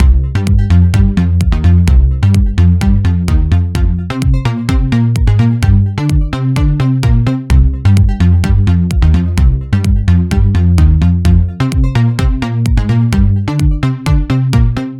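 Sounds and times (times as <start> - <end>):
kick drum: 0.0 - 14.8
phat bass line in C minor: 0.0 - 14.9.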